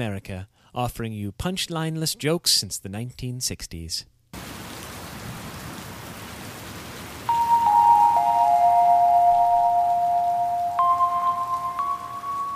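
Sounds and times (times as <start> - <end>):
speech: 0.0 - 4.2
rain falling in Los Angeles: 4.4 - 12.5
long sustained musical tones: 7.3 - 12.5.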